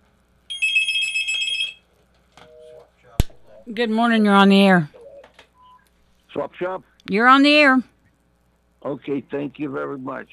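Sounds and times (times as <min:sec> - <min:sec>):
telephone with bright electronic ringing tone: 0:00.5 - 0:01.9
speech: 0:03.6 - 0:05.0, 0:06.3 - 0:07.9, 0:08.8 - 0:10.3.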